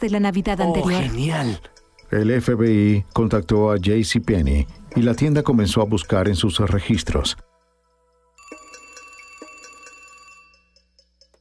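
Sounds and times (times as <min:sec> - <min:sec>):
speech: 0:00.0 - 0:07.5
telephone bell ringing for an incoming call: 0:08.4 - 0:11.0.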